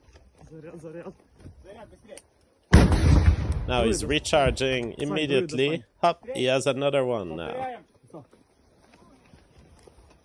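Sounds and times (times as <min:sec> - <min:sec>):
speech: 0:00.5 - 0:02.4, 0:03.7 - 0:08.4
weapon blast fired at a tank: 0:02.7 - 0:04.3.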